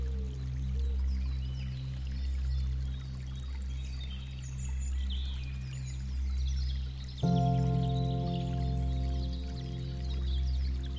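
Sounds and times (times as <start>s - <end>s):
gentle music holding a low steady drone: 0.0s - 10.9s
birds chirping softly: 7.0s - 10.9s.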